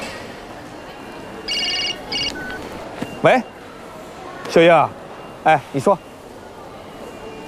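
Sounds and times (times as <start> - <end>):
phone ringtone chirping in warbling high electronic tones: 1.4 - 3.6
speech: 3.2 - 3.6, 4.5 - 6.1.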